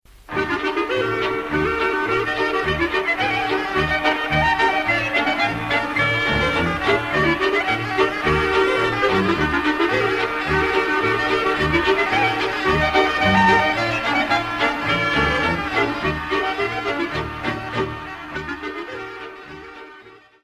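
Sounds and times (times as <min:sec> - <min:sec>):
Czech polka music: 0:00.1 - 0:20.4.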